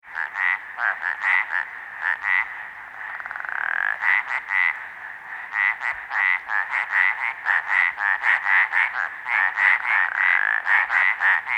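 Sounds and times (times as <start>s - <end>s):
Arizona treefrog pulsed croaking: 0.1s - 11.5s.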